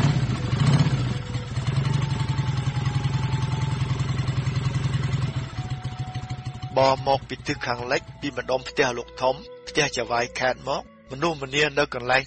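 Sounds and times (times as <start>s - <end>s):
motorcycle engine running: 0.0s - 8.7s
speech: 6.8s - 12.2s.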